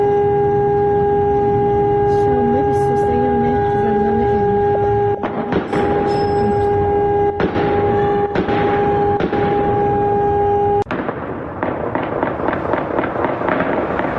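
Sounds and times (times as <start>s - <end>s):
steady alarm-like tone: 0.0s - 10.9s
sharp loud explosions during a large prison fire in Iran: 4.5s - 14.1s
rapid crackling burst of gunfire: 5.2s - 6.2s, 7.4s - 14.1s.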